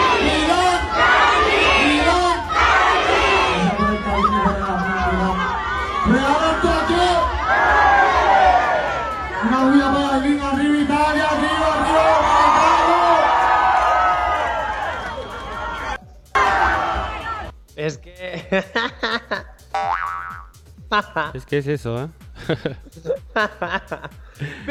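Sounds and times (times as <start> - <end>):
large concert crowd shouting a call-and-response chant: 0.0 - 9.5, 15.0 - 17.5
concert crowd cheering: 0.0 - 17.5
laughter: 3.8 - 5.6, 18.3 - 19.6, 20.9 - 21.4, 22.4 - 24.6
speech: 21.2 - 24.6.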